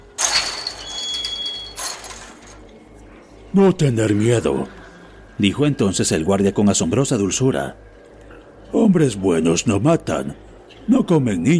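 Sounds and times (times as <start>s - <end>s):
door creaking open with a high squeal: 0.0s - 2.8s
speech: 3.6s - 4.8s, 5.4s - 7.9s, 8.7s - 11.5s.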